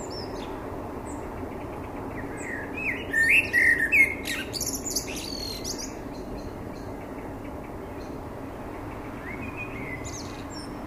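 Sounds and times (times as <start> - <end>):
Common blackbird Turdus merula song: 0.0 - 10.8.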